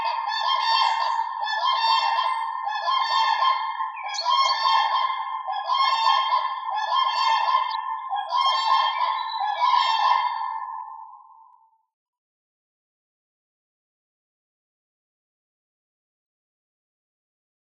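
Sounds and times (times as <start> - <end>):
swan calling with loud nasal honks: 0.0 - 10.4.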